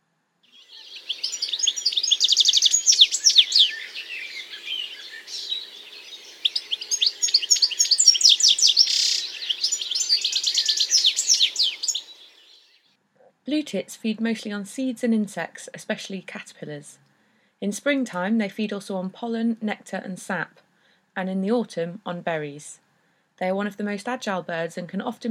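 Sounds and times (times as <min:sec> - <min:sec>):
European goldfinch twitter of tinkling high notes and short trills: 0:00.5 - 0:12.8
speech: 0:13.5 - 0:20.6, 0:21.2 - 0:22.8, 0:23.4 - 0:25.3.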